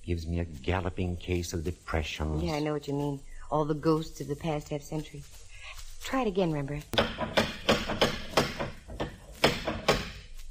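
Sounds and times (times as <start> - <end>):
speech: 0.1 - 8.0
old door knocker on a house with 1906 fittings rapping: 7.0 - 10.0.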